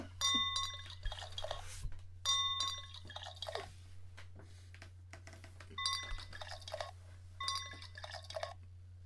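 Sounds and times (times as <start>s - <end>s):
glass clinking: 0.2s - 1.6s, 2.2s - 3.6s, 5.8s - 6.8s, 7.4s - 8.4s.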